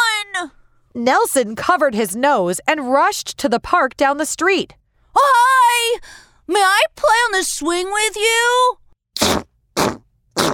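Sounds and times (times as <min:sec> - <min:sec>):
speech: 0:00.4 - 0:09.4
loud raspy fart noises: 0:09.2 - 0:10.5.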